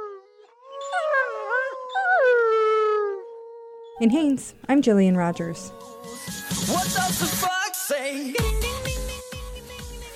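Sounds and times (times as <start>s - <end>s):
several wolves howling together: 0.0s - 4.3s, 5.0s - 6.5s
speech: 4.0s - 6.0s, 6.6s - 8.9s.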